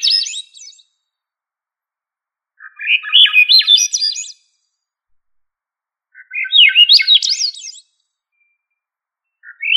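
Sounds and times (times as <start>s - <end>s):
thrush song of slurred whistled notes: 0.0s - 1.0s, 2.6s - 4.7s, 6.1s - 9.7s.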